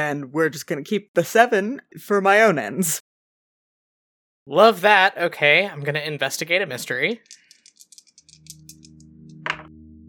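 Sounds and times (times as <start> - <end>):
speech: 0.0 - 3.1, 4.5 - 7.4
dice rolled in a tabletop game rattling and clattering: 7.2 - 9.0.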